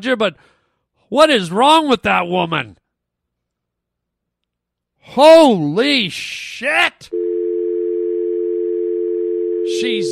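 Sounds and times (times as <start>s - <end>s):
speech: 0.0s - 2.8s, 5.0s - 7.2s, 9.7s - 10.0s
telephone dial tone after call ends: 7.2s - 10.0s.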